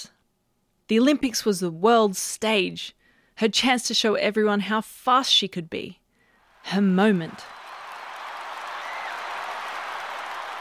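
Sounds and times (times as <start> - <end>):
speech: 0.9 - 6.0, 6.6 - 7.6
huge stadium crowd roaring and cheering: 6.5 - 10.5.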